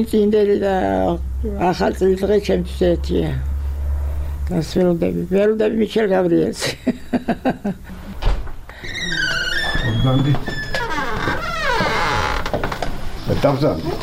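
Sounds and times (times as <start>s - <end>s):
speech: 0.0s - 3.5s, 4.5s - 8.0s, 10.0s - 10.6s, 13.3s - 14.0s
laughter: 6.6s - 8.1s
room door in a retirement home creaking: 8.0s - 13.2s.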